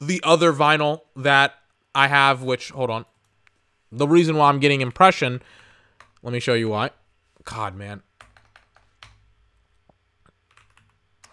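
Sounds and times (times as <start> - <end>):
speech: 0.0 - 3.1, 3.9 - 5.6, 6.2 - 8.1
low steady hum: 0.0 - 11.3
typing on a new computer keyboard: 8.2 - 9.3, 10.3 - 11.3.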